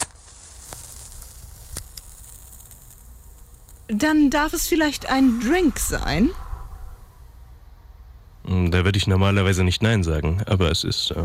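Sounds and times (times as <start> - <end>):
match struck with a thumbnail and flaring: 0.0 - 5.2
speech: 3.9 - 6.4, 8.6 - 11.2.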